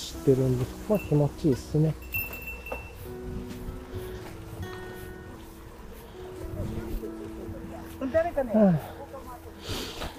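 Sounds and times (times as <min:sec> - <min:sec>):
wind and road noise while riding a bicycle: 0:00.0 - 0:10.1
speech: 0:00.2 - 0:02.1, 0:08.5 - 0:09.0
bear bell jingling on a moving bicycle: 0:00.9 - 0:03.2.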